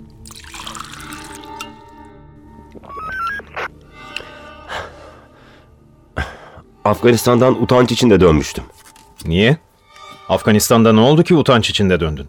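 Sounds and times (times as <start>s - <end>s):
water poured out as a drink is offered: 0.0s - 2.0s
breaths: 4.0s - 6.7s
speech: 6.9s - 9.7s, 10.3s - 12.2s.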